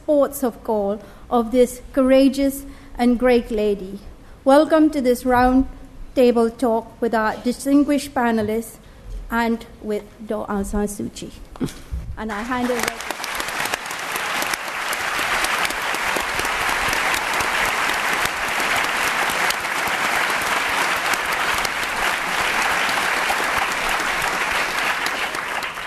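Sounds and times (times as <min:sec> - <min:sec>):
speech: 0:00.1 - 0:13.1
sustained applause from a large audience: 0:12.6 - 0:25.8.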